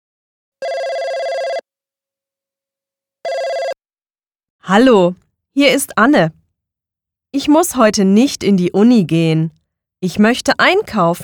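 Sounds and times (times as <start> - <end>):
telephone ringing as someone calls a friend: 0.6 - 1.6, 3.2 - 3.8
speech: 4.6 - 6.4, 7.3 - 11.2.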